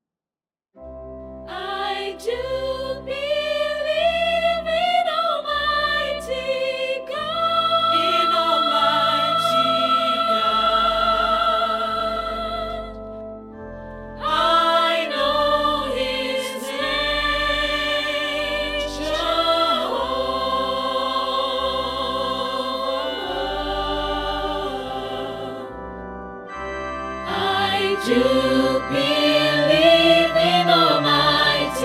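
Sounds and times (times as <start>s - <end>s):
dynamic OrganTeq choir sound: 0.8s - 31.8s.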